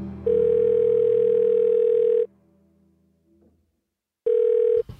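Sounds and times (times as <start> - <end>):
telephone line ringing tone through a handset: 0.3 - 2.3, 4.3 - 4.8.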